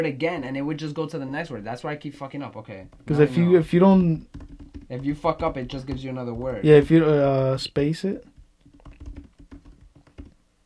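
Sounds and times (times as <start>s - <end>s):
speech: 0.0s - 8.3s
rapid typing on a computer keyboard: 4.2s - 7.0s, 8.3s - 10.4s.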